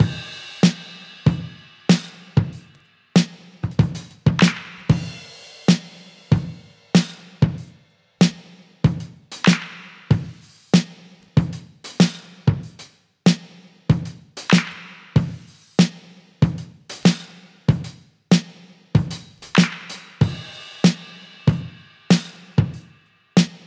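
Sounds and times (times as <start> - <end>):
95 bpm breakbeat drum beat in E key with kick tuned to E: 0.0 - 23.6.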